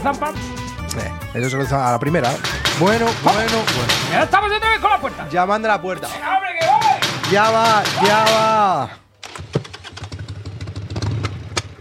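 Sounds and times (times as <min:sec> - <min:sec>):
speech: 0:00.0 - 0:09.0
motorcycle engine rumbling: 0:09.4 - 0:11.8.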